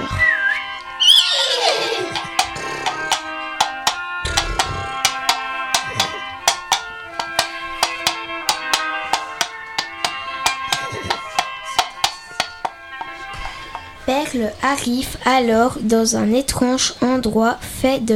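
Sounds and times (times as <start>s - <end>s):
soft sustained musical backdrop: 0.0s - 18.1s
black and white horse giving a shrill descending whinny: 0.2s - 3.0s
horse hoofbeats clip-clopping as it is ridden: 1.8s - 14.0s
speech: 14.3s - 18.1s.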